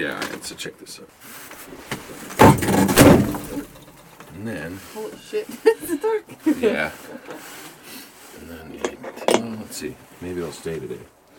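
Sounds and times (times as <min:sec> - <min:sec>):
speech: 0:00.0 - 0:03.7, 0:04.3 - 0:07.7, 0:08.4 - 0:11.2
door swung shut by hand: 0:02.4 - 0:03.6.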